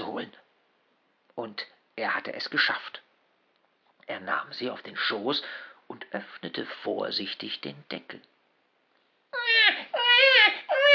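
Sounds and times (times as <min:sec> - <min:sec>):
speech: 0:01.4 - 0:03.0, 0:04.1 - 0:08.3
baby crying inside a cardboard box: 0:09.3 - 0:10.9.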